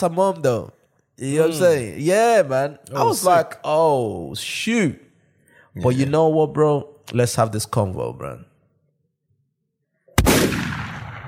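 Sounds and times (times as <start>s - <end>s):
speech: 0.0s - 5.0s, 5.8s - 8.5s
loud gunshot: 10.2s - 11.2s.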